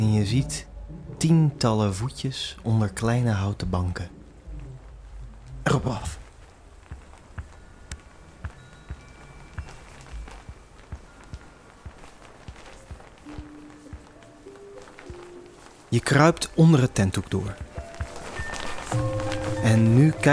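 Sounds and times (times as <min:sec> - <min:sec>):
speech: 0:00.0 - 0:04.2, 0:05.6 - 0:06.2, 0:15.9 - 0:17.7, 0:18.9 - 0:20.3
faint rustling background: 0:00.0 - 0:20.3
animal paw steps: 0:04.2 - 0:20.3.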